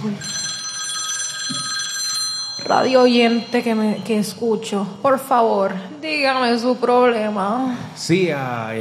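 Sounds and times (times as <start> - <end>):
telephone ringing with an incoming call on a call-in line: 0.2 - 4.7
speech: 2.7 - 8.8.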